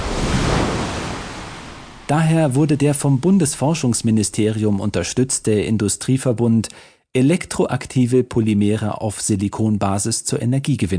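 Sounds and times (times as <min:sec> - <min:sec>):
ocean waves crashing: 0:00.0 - 0:04.4
wind rushing: 0:00.0 - 0:04.6
speech: 0:02.1 - 0:10.9.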